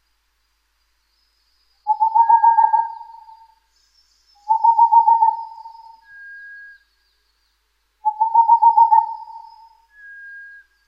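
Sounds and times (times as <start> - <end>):
Boreal Owl singing a pulsed trill of soft hoots: 1.9 - 3.6, 4.4 - 6.1, 8.0 - 9.9.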